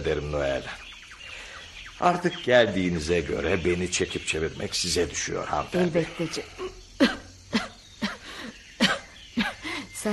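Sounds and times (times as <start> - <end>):
speech: 0.0 - 0.8, 2.0 - 7.7
woman coughing: 7.0 - 8.2, 8.8 - 9.7.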